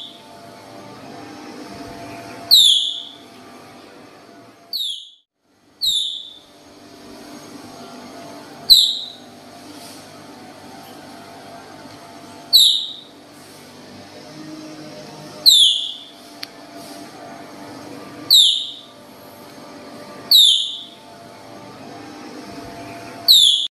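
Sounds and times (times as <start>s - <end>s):
Baird's tapir giving shrill whistles: 0.0s - 0.2s, 2.5s - 3.2s, 4.7s - 5.2s, 5.8s - 6.5s, 8.7s - 9.3s, 12.5s - 13.2s, 15.4s - 16.2s, 18.3s - 19.0s, 20.3s - 21.0s, 23.3s - 23.6s.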